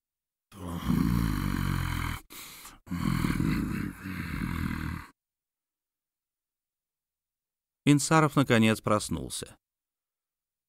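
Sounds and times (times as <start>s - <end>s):
voice growling like an animal: 0.5s - 5.2s
speech: 7.9s - 9.6s.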